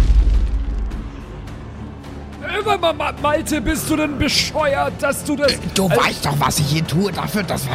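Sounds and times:
landmine explosion with heavy low rumble: 0.0 - 0.9
speech: 2.6 - 7.7.

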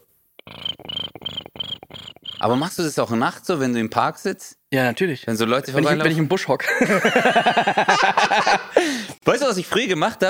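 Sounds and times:
voice imitating cricket chirping: 0.5 - 2.6
speech: 2.4 - 10.2
laughter: 5.8 - 9.0.

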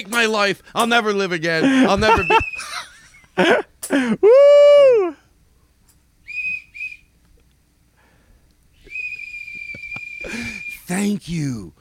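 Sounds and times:
speech: 0.0 - 5.2, 10.9 - 11.7
laughter: 1.5 - 4.2, 9.5 - 10.7
whistle blowing: 2.1 - 2.8, 6.2 - 7.2, 8.7 - 11.0.

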